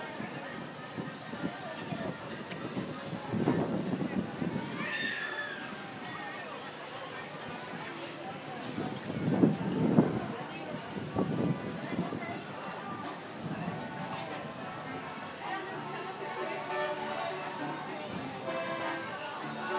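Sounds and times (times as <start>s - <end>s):
steady wind gusts buffeting the microphone outdoors on a sunny day: 0.0s - 5.0s, 8.8s - 15.0s
faint voices: 0.0s - 19.7s.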